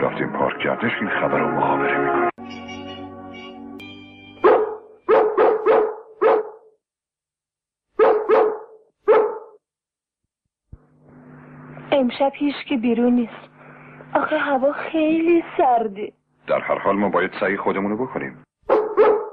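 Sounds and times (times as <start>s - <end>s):
speech: 0.2s - 2.3s, 12.0s - 13.5s, 14.2s - 18.5s
dogs barking: 4.4s - 6.7s, 8.0s - 9.6s, 18.7s - 19.3s.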